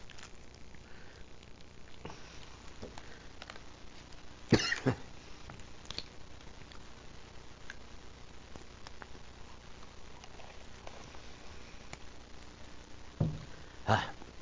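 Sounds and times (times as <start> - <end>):
faint hiss: 0.0 - 14.3
person clearing throat: 4.5 - 5.1
person coughing: 4.5 - 5.1.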